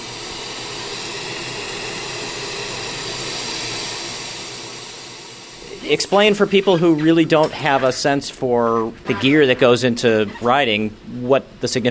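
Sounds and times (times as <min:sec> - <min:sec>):
engraving machine making nameplates: 0:00.0 - 0:08.4
speech: 0:05.9 - 0:11.8.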